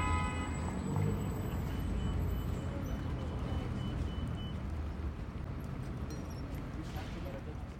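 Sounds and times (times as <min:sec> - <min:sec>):
busy city street traffic on five lanes in Philadelphia: 0:00.0 - 0:07.7
faint tonal beeps: 0:01.1 - 0:04.8.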